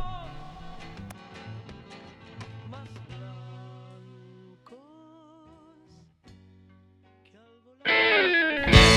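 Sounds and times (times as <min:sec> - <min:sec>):
effects-heavy wavering guitar tones in a 1998 rock song intro: 0:07.9 - 0:08.9.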